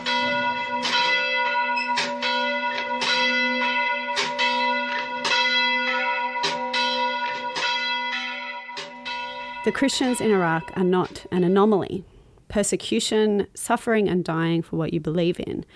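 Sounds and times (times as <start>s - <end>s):
church bells ringing from damaged church tower in Karakosh Iraq: 0.0s - 11.9s
speech: 9.6s - 15.7s.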